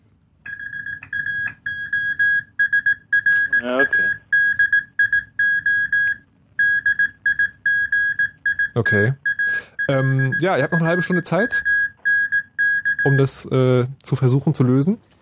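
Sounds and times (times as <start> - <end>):
high-pitched Morse code beeps: 0.5 - 13.4
speech: 8.8 - 11.7, 13.0 - 15.1.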